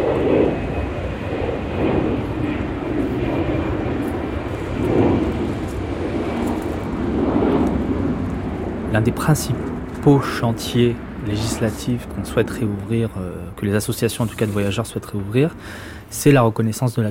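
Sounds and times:
airplanes flying low over a caravan site: 0.0s - 17.1s
speech: 9.0s - 17.1s.

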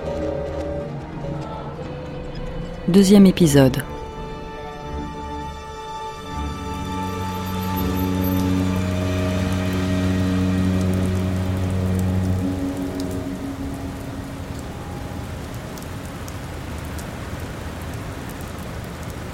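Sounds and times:
steady rain: 0.0s - 19.3s
speech: 2.9s - 4.0s
low droning tone: 6.6s - 15.9s.

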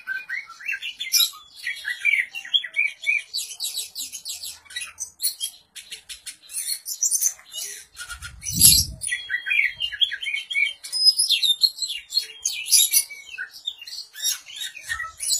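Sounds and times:
Oriental magpie-robin singing: 0.0s - 15.3s.

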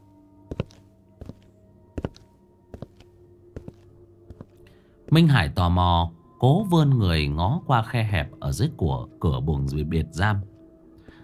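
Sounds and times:
prison guard's footsteps with sharp heel strikes along a prison corridor: 0.0s - 4.6s
speech: 0.5s - 0.8s, 5.1s - 10.5s.

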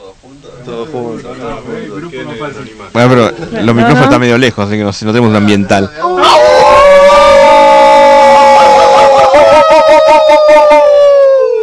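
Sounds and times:
speech: 0.2s - 6.2s
group of people howling in imitation of a wolf pack: 6.0s - 11.6s.

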